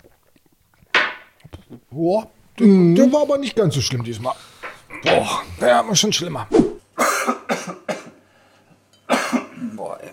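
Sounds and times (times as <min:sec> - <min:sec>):
speech: 0:02.0 - 0:06.7
person giving harsh breathy coughs: 0:07.0 - 0:08.2, 0:09.1 - 0:09.7.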